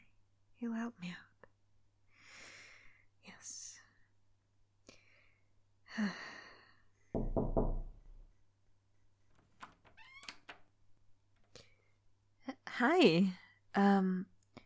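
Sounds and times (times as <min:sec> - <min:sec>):
speech: 0:00.6 - 0:01.3, 0:06.0 - 0:06.2, 0:12.9 - 0:14.3
firm knocks on a neighbor's door: 0:07.1 - 0:08.2.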